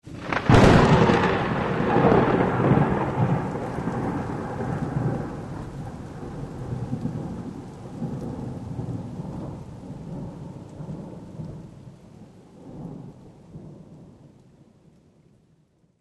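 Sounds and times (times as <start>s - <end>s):
lightning strikes: 0.1s - 10.3s.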